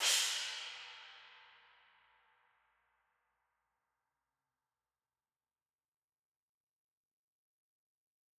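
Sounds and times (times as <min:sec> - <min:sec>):
high crash cymbal: 0:00.0 - 0:02.2.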